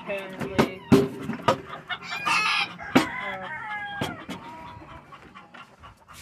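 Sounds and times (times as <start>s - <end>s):
chickens clucking: 0.0s - 6.2s
speech: 0.1s - 0.5s
rooster crowing: 2.0s - 4.3s.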